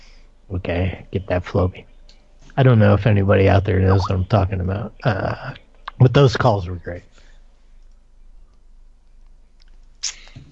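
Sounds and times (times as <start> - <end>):
low steady hum: 0.0 - 10.5
speech: 0.5 - 1.9, 2.6 - 7.2
person sneezing: 10.0 - 10.4.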